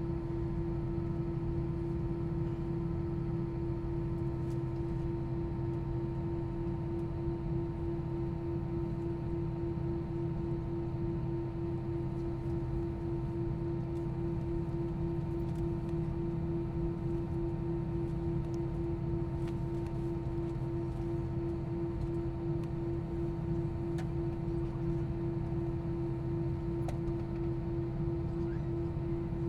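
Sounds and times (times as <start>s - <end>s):
airplane engines humming: 0.0s - 29.4s.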